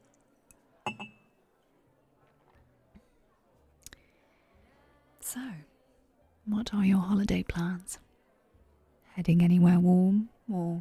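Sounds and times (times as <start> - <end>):
faint murmur: 0.0 - 10.7
speech: 0.9 - 1.2, 5.3 - 5.7, 6.5 - 8.1, 9.2 - 10.7
champagne glasses clinking in a toast: 0.9 - 1.3.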